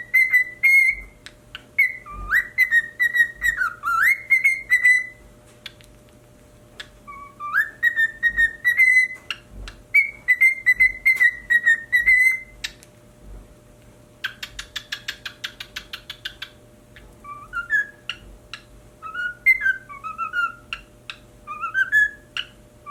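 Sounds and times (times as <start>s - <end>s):
pied cockatiel whistling and chattering: 0.0s - 1.2s, 1.8s - 5.2s, 6.8s - 12.8s, 14.2s - 16.6s, 17.2s - 18.2s, 19.0s - 22.8s.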